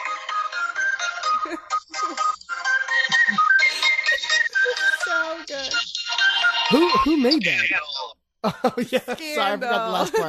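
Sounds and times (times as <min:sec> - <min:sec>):
custom phone ringtone of layered loops with bright repeating tones: 0:00.0 - 0:07.7
speech: 0:01.5 - 0:01.7, 0:06.7 - 0:10.2
laughter: 0:06.7 - 0:07.4, 0:08.4 - 0:10.2.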